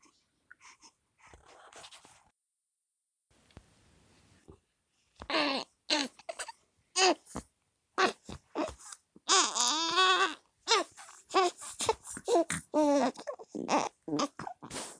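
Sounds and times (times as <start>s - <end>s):
baby crying: 5.3s - 7.2s, 8.0s - 14.4s.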